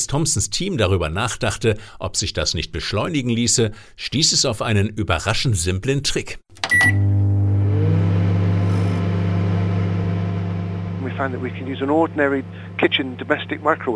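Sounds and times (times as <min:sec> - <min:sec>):
speech: 0:00.0 - 0:07.1, 0:11.2 - 0:13.9
kitchen microwave oven beep: 0:06.6 - 0:07.8
kitchen microwave oven humming while drying silicate cream: 0:06.6 - 0:13.9.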